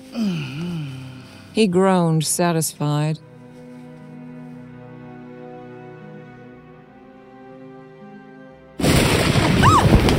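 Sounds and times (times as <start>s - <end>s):
speech: 0.1s - 0.6s, 1.6s - 3.3s
thunder crack and rumble: 8.8s - 10.1s.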